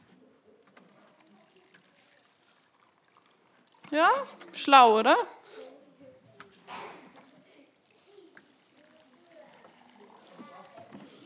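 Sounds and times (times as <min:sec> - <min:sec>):
water pouring down from above, splashing and gurgling: 0:00.8 - 0:05.0, 0:07.1 - 0:11.2
speech: 0:03.9 - 0:05.4.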